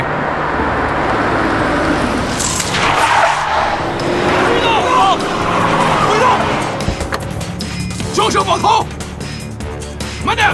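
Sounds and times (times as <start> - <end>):
orange sedan arriving: 0.0 - 8.4
orange sedan tire skid hissing: 1.2 - 8.0.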